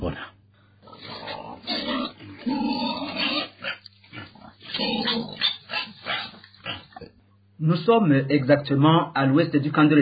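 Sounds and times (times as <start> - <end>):
pigs grunting and snorting in a pigsty near a refugee camp in Rwanda: 0.0 - 7.1
faint steady low hum: 0.0 - 9.9
speech: 7.7 - 9.9.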